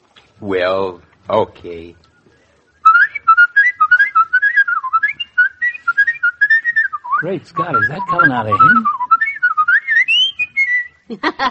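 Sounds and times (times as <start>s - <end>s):
speech: 0.4s - 2.1s, 7.2s - 9.0s, 11.1s - 11.5s
man whistling a bright lilting melody: 2.0s - 11.1s.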